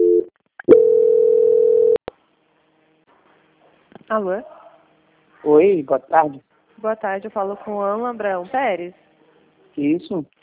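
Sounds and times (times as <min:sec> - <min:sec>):
telephone line tones during a bank call transfer: 0:00.0 - 0:02.0
speech: 0:04.1 - 0:04.6, 0:05.4 - 0:09.1, 0:09.8 - 0:10.4.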